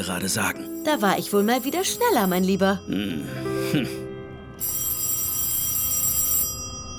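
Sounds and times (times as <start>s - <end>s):
speech: 0.0s - 4.0s
telephone bell ringing: 0.6s - 2.9s, 4.6s - 6.9s.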